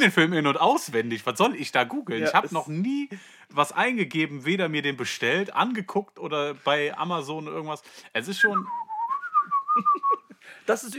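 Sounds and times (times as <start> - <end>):
speech: 0.0 - 8.9, 9.8 - 10.9
person whistling a steady wavering tone: 8.4 - 10.4.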